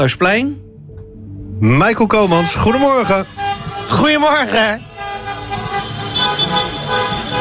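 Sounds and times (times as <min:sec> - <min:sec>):
speech: 0:00.0 - 0:00.6, 0:01.6 - 0:04.9
many car horns honking from gridlocked cars in the city centre: 0:02.0 - 0:07.3
steady rumble of idling vehicles: 0:02.3 - 0:07.3.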